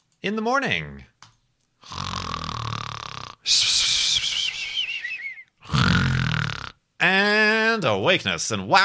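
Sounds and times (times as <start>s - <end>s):
speech: 0.2s - 1.1s, 3.4s - 3.7s, 7.0s - 8.8s
person imitating loud snoring: 1.8s - 6.8s.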